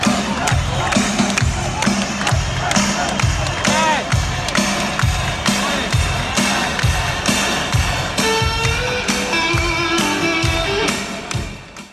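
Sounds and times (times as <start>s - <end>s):
crowd cheering at a cycling time trial: 0.0s - 11.8s
people shouting: 1.6s - 4.2s.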